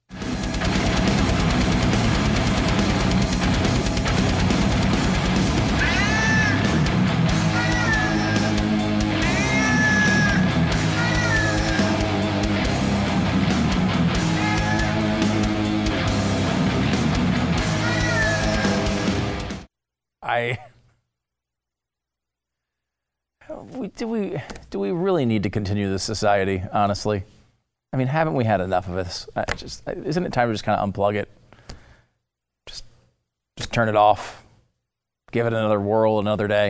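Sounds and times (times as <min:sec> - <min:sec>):
heavy metal song with distorted guitars and pounding drums: 0:00.1 - 0:19.7
speech: 0:20.4 - 0:20.6, 0:24.0 - 0:31.4, 0:32.7 - 0:32.9, 0:33.6 - 0:34.4, 0:35.3 - 0:36.6.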